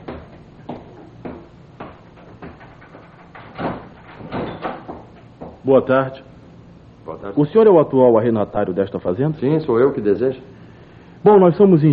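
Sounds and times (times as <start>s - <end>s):
wooden thumps and clunks: 0.0s - 5.6s
door being opened to answer a visitor: 2.2s - 5.3s
speech: 5.6s - 6.3s, 7.1s - 10.5s, 11.2s - 11.9s.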